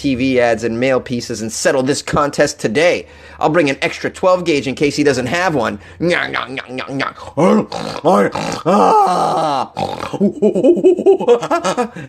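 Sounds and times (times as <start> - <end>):
speech: 0.0 - 12.0
person grunting and hooting imitating a monkey: 6.0 - 11.6
bursts of laughter-like sounds: 10.2 - 12.0.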